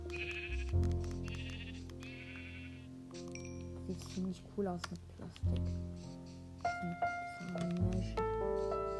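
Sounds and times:
sheep bleating: 0.1 - 0.6, 1.3 - 2.9
speech: 3.9 - 6.2, 6.8 - 8.8.

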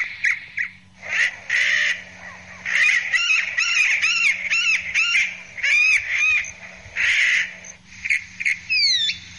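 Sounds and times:
chalk-browed mockingbird singing: 0.0 - 9.3.

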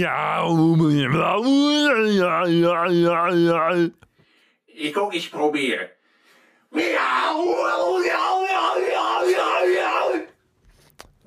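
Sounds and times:
person yelling loudly: 0.0 - 3.9, 6.7 - 10.3
speech: 0.0 - 4.1, 4.8 - 6.0, 6.7 - 10.0.

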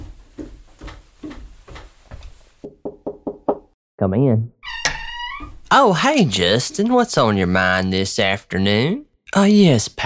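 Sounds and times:
knocking on an office door: 2.6 - 3.8
speech: 4.0 - 4.6, 5.7 - 10.0.

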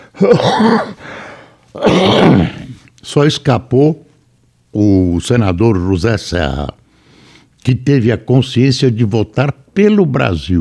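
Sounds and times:
person coughing in rough forceful bursts: 0.1 - 1.1, 1.8 - 2.8
speech: 0.2 - 1.0, 1.8 - 4.0, 4.7 - 6.8, 7.6 - 10.5.

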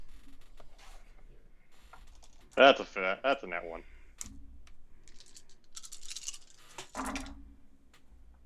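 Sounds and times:
many dice tumbling and rattling across a surface: 2.1 - 2.4, 5.0 - 7.3
speech: 2.6 - 3.9.

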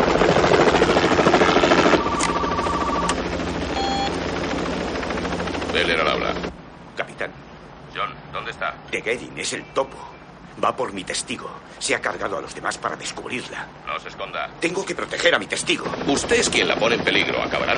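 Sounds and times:
helicopter rotor and engine roar heard from inside a helicopter during a police pursuit: 0.0 - 6.9, 11.7 - 17.7
brief electronic beeps: 2.0 - 4.2
speech: 9.0 - 17.7.

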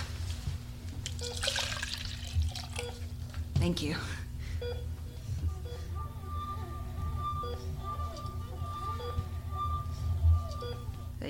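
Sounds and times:
low constant hum of room noise: 0.0 - 11.2
water pouring into a glass: 1.1 - 3.0
speech: 3.6 - 4.9.

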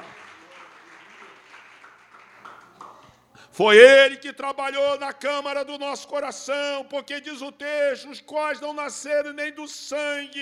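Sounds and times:
crowd applause: 0.0 - 3.2
speech: 3.6 - 10.4.

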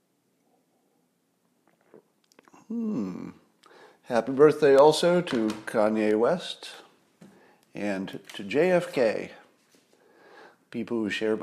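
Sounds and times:
person sipping a drink: 1.5 - 3.8
satisfied vocal sigh: 2.5 - 4.0
speech: 2.7 - 3.4, 4.1 - 6.8, 7.8 - 9.4, 10.7 - 11.4.

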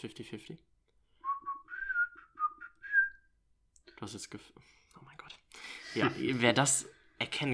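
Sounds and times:
speech: 0.0 - 0.8, 4.0 - 7.5
person whistling a short wobbly melody: 1.2 - 3.2.

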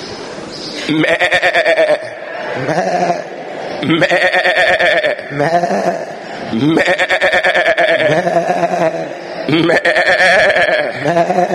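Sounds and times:
several people imitating sheep bleating: 0.9 - 11.5
laughter: 1.8 - 4.0, 4.7 - 7.0, 7.8 - 11.5.

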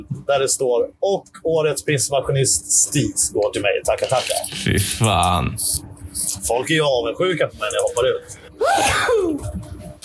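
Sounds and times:
speech: 0.0 - 9.6
man sneezing: 8.6 - 9.3.

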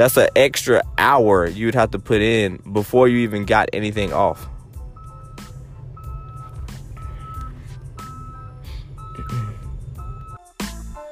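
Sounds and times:
speech: 0.0 - 4.5
large truck engine rumbling: 0.0 - 10.9
dump truck reversing alarm beeping: 3.2 - 10.4.

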